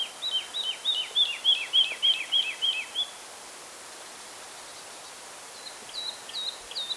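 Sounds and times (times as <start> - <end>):
Woodlark singing liquid downslurred whistles: 0.0 - 3.2, 5.6 - 6.9.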